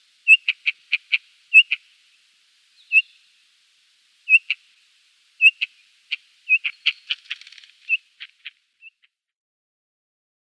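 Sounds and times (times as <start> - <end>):
Rufous-tailed Rock-Thrush calls: 0.2 - 1.9, 2.8 - 3.4, 4.2 - 4.7, 5.4 - 9.2.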